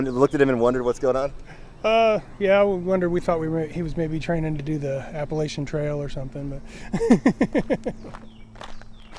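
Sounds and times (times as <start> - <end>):
speech: 0.0 - 8.4
low noise: 0.0 - 9.1
laughter: 6.8 - 8.2
footsteps of people walking on a long hike: 7.8 - 9.1.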